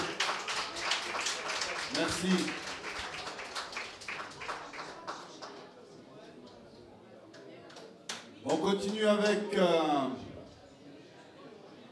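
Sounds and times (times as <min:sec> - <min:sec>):
crowd applauding: 0:00.0 - 0:05.6
speech: 0:02.0 - 0:02.6, 0:08.6 - 0:10.2.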